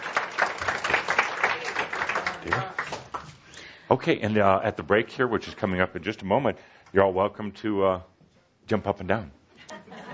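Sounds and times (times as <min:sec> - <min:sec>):
crowd clapping: 0:00.0 - 0:03.4
speech: 0:03.9 - 0:08.1, 0:08.7 - 0:09.4.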